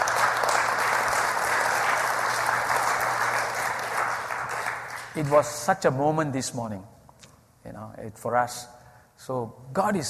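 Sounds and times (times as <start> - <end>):
church audience applause: 0.0 - 5.6
speech: 5.2 - 7.0, 8.0 - 10.0.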